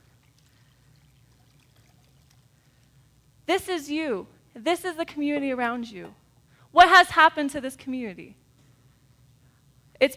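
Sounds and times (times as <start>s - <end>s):
liquid pouring into a bowl: 0.0s - 3.0s
low hum: 0.0s - 10.1s
speech: 3.5s - 8.4s, 10.0s - 10.1s.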